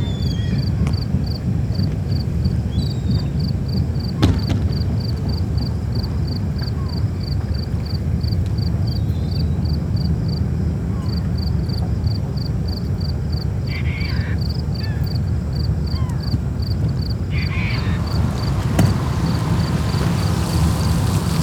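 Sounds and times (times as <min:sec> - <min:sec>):
brief bird calls: 0:00.0 - 0:00.8, 0:13.7 - 0:16.4, 0:17.3 - 0:20.9
steady low rumble of water and wind at a marina: 0:00.0 - 0:21.4.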